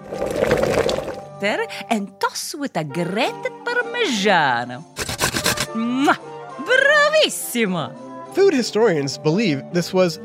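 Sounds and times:
water poured for cooking pasta: 0.0s - 1.4s
speech: 1.4s - 5.0s, 5.8s - 10.2s.

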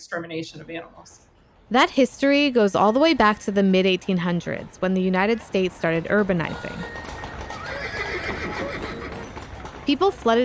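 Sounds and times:
speech: 0.0s - 7.2s, 9.9s - 10.4s
hooves clip-clopping: 3.1s - 10.4s
horse whinnying: 6.5s - 9.8s.

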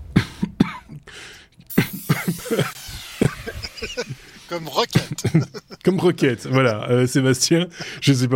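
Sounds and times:
person coughing: 0.1s - 1.0s, 1.8s - 2.8s
speech: 2.5s - 2.8s, 4.5s - 8.3s
laughter: 3.4s - 7.1s.

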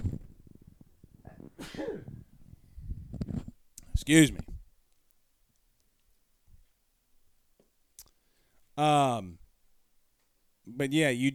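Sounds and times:
loud sneeze: 1.6s - 2.2s
speech: 4.0s - 4.5s, 8.8s - 9.4s, 10.8s - 11.3s.

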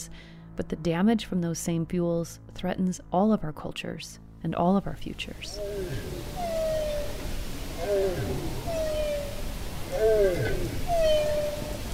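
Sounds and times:
speech: 0.0s - 6.3s, 7.8s - 8.6s, 9.9s - 11.6s
bowhead whale calling underwater: 5.4s - 11.9s
steady rushing underwater ocean noise: 5.4s - 11.9s.

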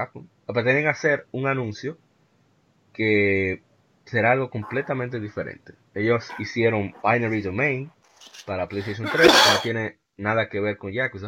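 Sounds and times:
speech: 0.0s - 2.0s, 3.0s - 11.2s
loud sneeze: 8.8s - 9.7s.

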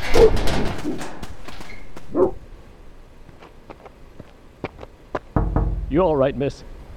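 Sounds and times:
speech: 0.2s - 1.2s, 5.9s - 6.8s
off-leash dogs barking: 2.1s - 2.4s.

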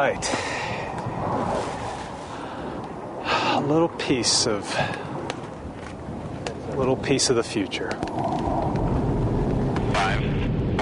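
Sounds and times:
speech: 0.0s - 0.6s, 3.7s - 5.1s, 6.8s - 8.8s
three F-18 fighter jets flying overhead at almost the speed of sound: 0.0s - 10.8s
voice-like burst: 9.9s - 10.8s.

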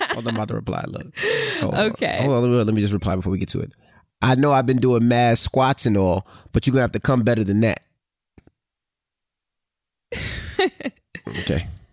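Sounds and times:
speech: 0.2s - 7.9s, 10.1s - 11.8s
harsh raspy cough from a sick person: 11.2s - 11.8s.

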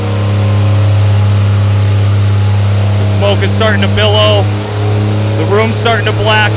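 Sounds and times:
engine held at high RPM during a test pull: 0.0s - 6.5s
speech: 3.4s - 6.5s.

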